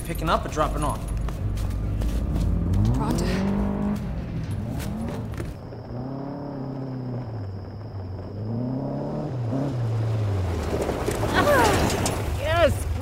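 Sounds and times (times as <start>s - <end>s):
all-terrain buggy engine droning while driving at night: 0.0s - 13.0s
speech: 0.1s - 1.7s, 3.0s - 3.6s.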